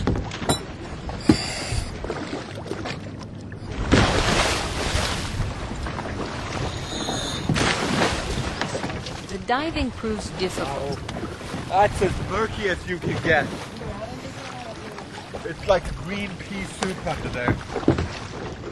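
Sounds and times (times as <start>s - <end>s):
small boat hull washing and sloshing through water: 0.0s - 18.6s
speech: 9.5s - 13.7s, 15.5s - 17.9s.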